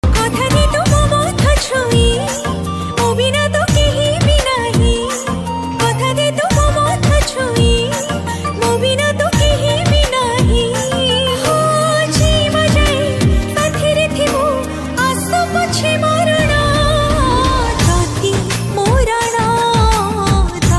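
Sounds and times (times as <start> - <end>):
woman singing Odia version: 0.0 - 20.7.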